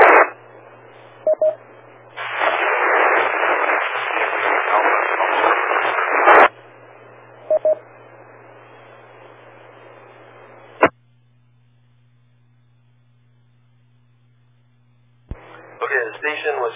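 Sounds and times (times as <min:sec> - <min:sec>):
crackling static on a ham radio call: 0:00.0 - 0:11.0, 0:15.2 - 0:16.7
faint hum: 0:00.0 - 0:16.7.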